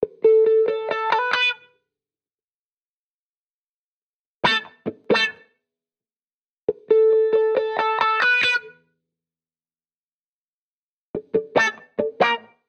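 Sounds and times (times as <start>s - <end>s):
70s guitars in B minor: 0.0s - 1.7s, 4.4s - 5.5s, 6.7s - 8.9s, 11.2s - 12.6s.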